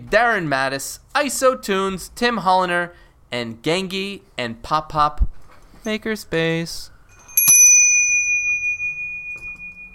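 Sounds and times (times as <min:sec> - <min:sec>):
speech: 0:00.1 - 0:06.9
bright bell strike: 0:07.2 - 0:09.9.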